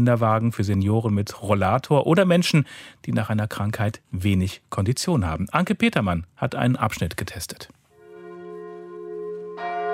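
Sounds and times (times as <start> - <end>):
speech: 0.0 - 7.8
church bells ringing from the Gothic tower of a Catholic church in a Palatinate town: 8.0 - 9.9.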